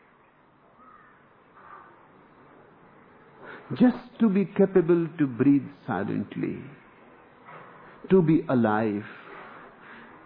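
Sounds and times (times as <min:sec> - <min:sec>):
soft outdoor hiss: 0:00.0 - 0:10.2
crow-like caws: 0:00.8 - 0:02.0
speech: 0:03.7 - 0:06.8, 0:08.0 - 0:09.2.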